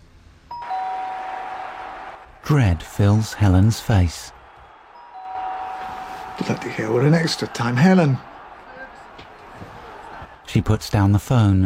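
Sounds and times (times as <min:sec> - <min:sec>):
doorbell chime ringing: 0:00.5 - 0:01.5, 0:05.0 - 0:06.6
speech: 0:02.5 - 0:04.4, 0:06.4 - 0:08.3, 0:10.5 - 0:11.6.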